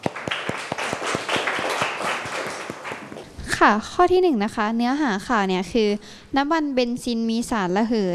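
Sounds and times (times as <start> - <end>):
room full of people clapping: 0.0 - 3.3
speech: 3.6 - 8.1.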